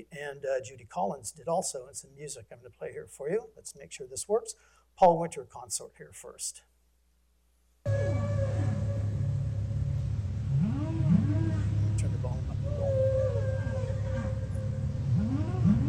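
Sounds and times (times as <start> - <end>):
speech: 0.0 - 6.7
music with swooping moans imitating whale song: 7.9 - 15.8
steady low drone in recorded music: 7.9 - 15.8.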